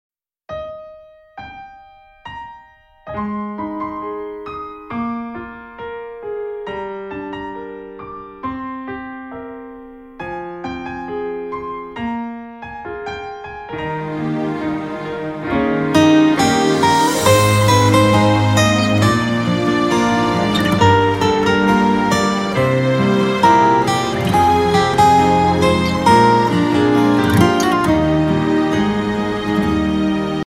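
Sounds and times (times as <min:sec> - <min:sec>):
piano piece phone ringtone: 0:00.6 - 0:29.9.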